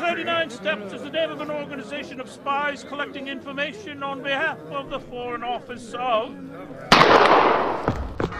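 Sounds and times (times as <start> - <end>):
speech: 0.2 - 7.9
gunshot: 6.9 - 8.1.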